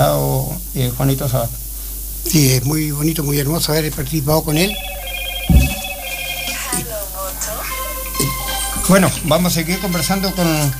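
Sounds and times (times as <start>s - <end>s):
speech: 0.8s - 1.6s, 2.2s - 4.9s, 8.9s - 10.7s
telephone ringing with an incoming call in a radio studio: 4.5s - 10.1s.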